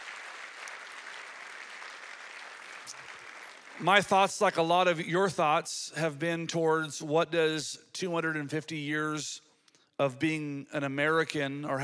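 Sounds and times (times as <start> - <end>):
large audience applause: 0.0 - 4.3
speech: 3.8 - 11.8.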